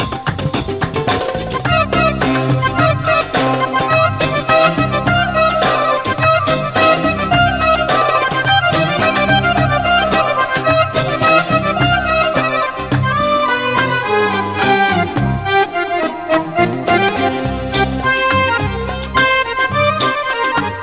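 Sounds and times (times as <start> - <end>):
belly dance music: 0.0 - 20.8.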